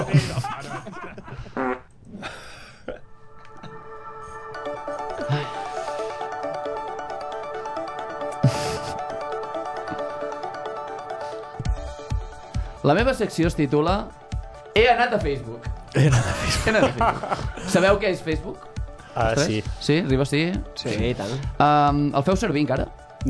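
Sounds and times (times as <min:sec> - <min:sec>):
laughter: 0:00.0 - 0:01.6, 0:16.0 - 0:17.7
loud raspy fart noises: 0:01.6 - 0:01.9
steady electronic tone like a ringtone: 0:03.9 - 0:12.8
speech: 0:12.9 - 0:14.2, 0:14.8 - 0:23.2.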